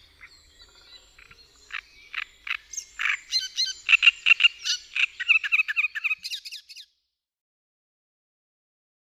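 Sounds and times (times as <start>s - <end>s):
great reed warbler song of harsh croaking and grating phrases: 0.0s - 7.0s.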